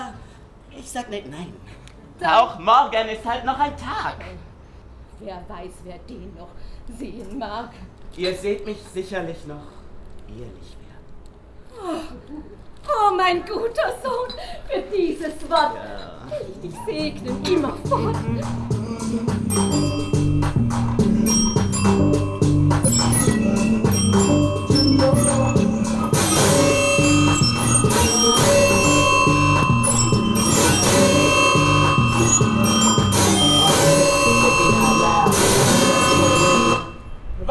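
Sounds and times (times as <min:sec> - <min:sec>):
speech: 0:00.8 - 0:04.5, 0:05.2 - 0:10.8, 0:11.8 - 0:19.6
laughter: 0:13.9 - 0:20.0
bells ringing in a resonant peal: 0:16.5 - 0:37.4.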